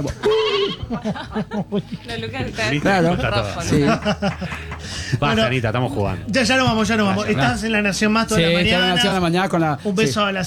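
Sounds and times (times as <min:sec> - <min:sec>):
laughter: 0:00.0 - 0:09.3
speech: 0:00.0 - 0:10.4
human voice imitating a sheep bleating: 0:00.1 - 0:00.9.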